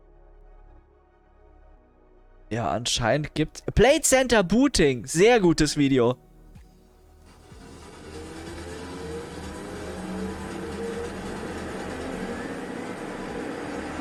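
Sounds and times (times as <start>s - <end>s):
speech: 2.6s - 6.3s
airplane taking off with a broad engine roar and low rumble: 7.3s - 14.0s.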